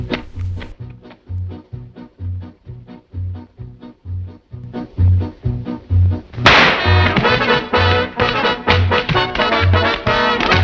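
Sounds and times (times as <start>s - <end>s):
steady rhythmic music beat: 0.0s - 10.6s
firecracker lit from a cigarette exploding in crackling bursts: 6.4s - 10.6s.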